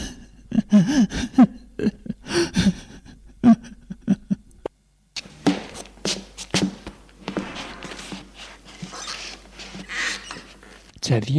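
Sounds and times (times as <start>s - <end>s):
person crying with sobs and gasping breaths: 0.0s - 4.5s
speech: 0.7s - 2.6s, 11.1s - 11.3s.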